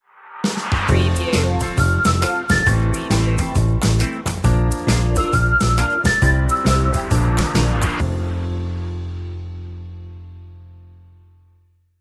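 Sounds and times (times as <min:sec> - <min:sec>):
carefree music stinger: 0:00.9 - 0:10.2.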